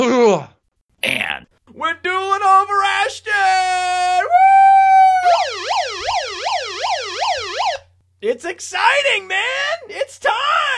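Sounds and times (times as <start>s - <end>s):
speech: 0.0s - 1.2s, 1.8s - 4.3s, 8.3s - 10.7s
fast rising-and-falling siren wail: 4.2s - 7.9s
steady electronic tone: 5.4s - 7.8s.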